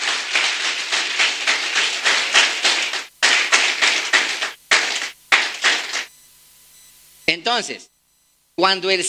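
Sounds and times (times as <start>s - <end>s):
audience applauding: 0.0s - 6.1s
speech: 7.4s - 7.9s, 8.6s - 9.0s.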